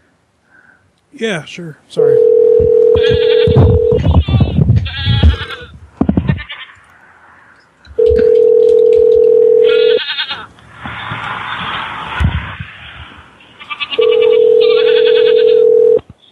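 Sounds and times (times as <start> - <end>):
speech: 1.1 - 4.4
long loud steady telephone tones: 2.0 - 4.3, 8.0 - 10.0, 14.0 - 16.0
goat bleating sound effect: 2.5 - 6.8, 9.6 - 10.5, 13.6 - 16.0.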